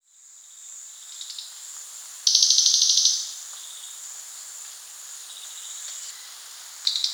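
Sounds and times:
background hiss: 0.1 - 7.1
crested jay giving a dry high-pitched rattle: 2.3 - 3.3.

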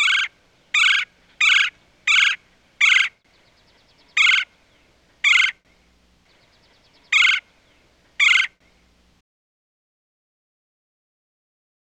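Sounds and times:
red-bellied woodpecker uttering harsh trilled kwirr notes: 0.0 - 8.6.

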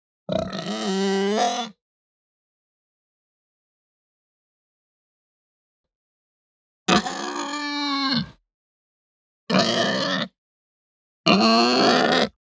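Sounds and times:
Hampshire pig grunting: 0.3 - 1.7, 6.9 - 8.4, 9.5 - 10.3, 11.3 - 12.4.

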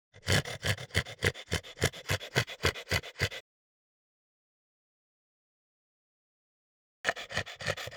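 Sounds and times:
French Bulldog giving harsh rhythmic gasping breaths: 0.2 - 3.4, 7.1 - 7.9.

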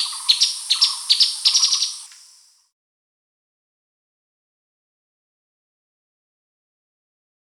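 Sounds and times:
Streaked spiderhunter calling in sharp high chips: 0.0 - 2.4.

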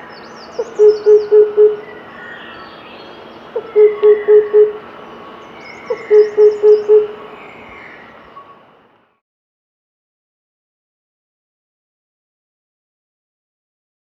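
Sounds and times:
faint high chirps from other birds: 0.0 - 8.6
Oriental cuckoo song: 0.6 - 1.8, 3.6 - 4.8, 5.9 - 7.2.

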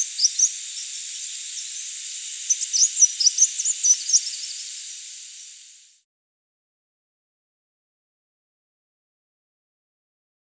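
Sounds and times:
crimson sunbird chirping and twittering: 0.0 - 6.0
steady high hiss: 0.0 - 6.0.

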